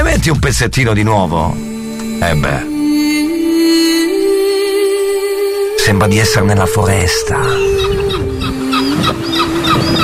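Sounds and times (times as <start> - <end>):
speech: 0.2 - 3.2, 5.9 - 8.0
low sustained tone: 1.6 - 10.0
gull-like bird calls from a film soundtrack: 7.0 - 10.0.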